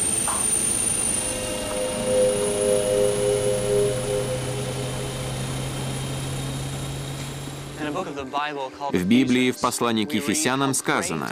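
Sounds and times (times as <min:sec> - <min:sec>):
aircraft engine droning as a plane takes off from a runway: 0:00.0 - 0:08.3
speech: 0:08.0 - 0:11.2.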